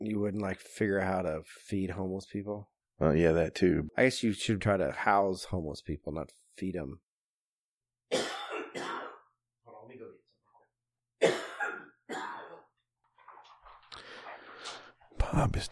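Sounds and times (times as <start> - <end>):
speech: 0.2 - 7.0, 15.4 - 15.7
man's rough throat-clearing: 8.1 - 9.3, 11.2 - 12.8
man coughing in harsh throaty bursts: 8.1 - 9.4, 11.2 - 12.8.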